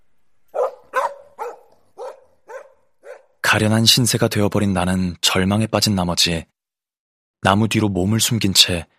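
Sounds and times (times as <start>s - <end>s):
wolfdog barking angrily while chasing someone: 0.5s - 3.4s
speech: 3.5s - 6.6s, 7.4s - 8.9s.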